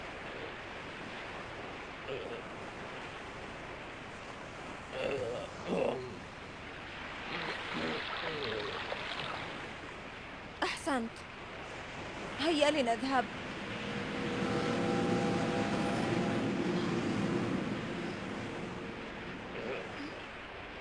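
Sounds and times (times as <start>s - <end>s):
storm-tossed sea waves crashing: 0.0s - 20.7s
speech: 11.0s - 11.3s, 12.4s - 13.5s.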